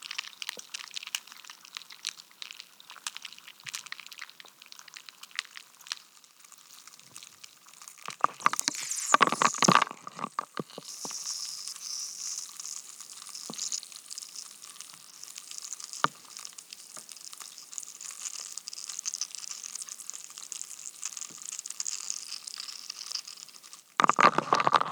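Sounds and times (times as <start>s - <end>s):
crunching: 8.0s - 10.9s, 24.0s - 24.9s
ice cracking recorded with a homemade stereo hydrophone: 8.1s - 10.8s, 24.0s - 24.9s
bright fizzing hiss: 8.3s - 9.9s, 10.8s - 14.5s.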